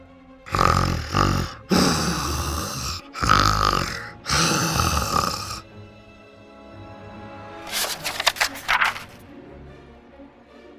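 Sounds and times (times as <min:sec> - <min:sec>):
loud exaggerated snoring performed by a voice: 0:00.5 - 0:05.6.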